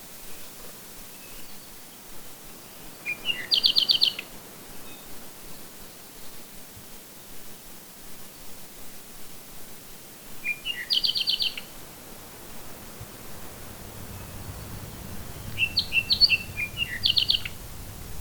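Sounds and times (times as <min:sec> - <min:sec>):
faint background hiss: 0:00.0 - 0:18.1
bird chirps: 0:10.5 - 0:11.7, 0:13.5 - 0:18.1
bird ticking notes: 0:13.5 - 0:18.1.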